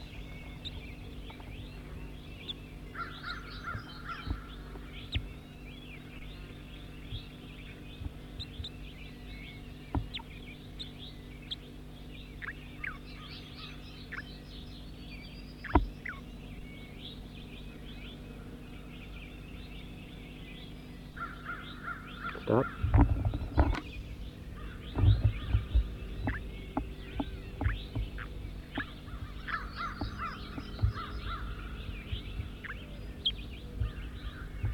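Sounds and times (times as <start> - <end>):
steady low hum: 0.0 - 34.7
bird calling with harsh caw-like notes: 2.9 - 5.2, 21.2 - 23.1, 24.6 - 34.7.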